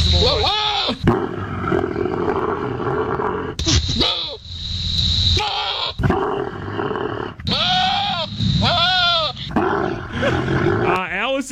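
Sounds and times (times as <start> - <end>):
voice imitating the mating call of a camel crossed with a goat: 0.1 - 4.4, 5.4 - 11.0.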